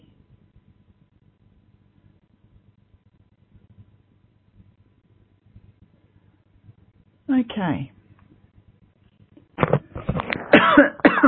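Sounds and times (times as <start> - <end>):
speech: 7.4 - 8.0
rough throaty coughs: 10.3 - 11.2.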